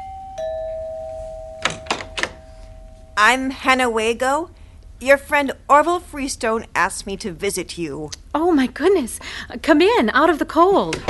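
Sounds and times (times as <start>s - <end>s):
doorbell ringing with a clear sustained chime: 0.0s - 3.3s
speech: 3.2s - 11.0s.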